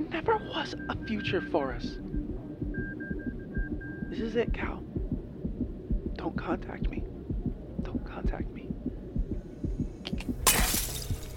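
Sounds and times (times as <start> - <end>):
speech: 0.1 - 2.2, 4.1 - 4.9, 6.2 - 7.1, 8.2 - 8.6
steady low throbbing pulse: 0.8 - 10.5
drinking glass dropped and shattering on the floor: 10.5 - 11.3.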